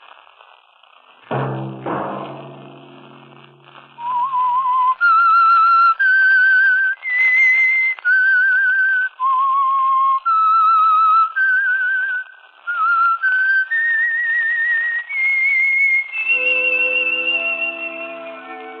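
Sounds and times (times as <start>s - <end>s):
lone whistler whistling a slow melodic tune: 4.0s - 18.7s.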